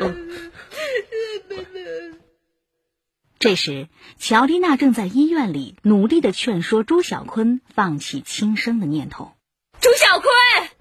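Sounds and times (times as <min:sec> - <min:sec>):
woman crying: 0:00.0 - 0:02.4
speech: 0:03.4 - 0:10.7.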